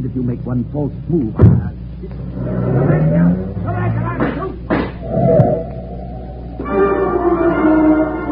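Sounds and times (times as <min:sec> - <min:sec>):
speech: 0:00.0 - 0:04.5
car engine revving and accelerating as car drives off: 0:02.1 - 0:04.2, 0:05.0 - 0:08.2.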